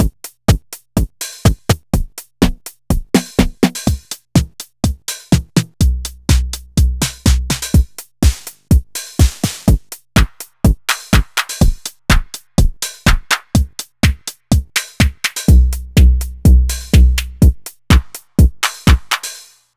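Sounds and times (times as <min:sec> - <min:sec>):
analog drum kit: 0:00.0 - 0:19.6.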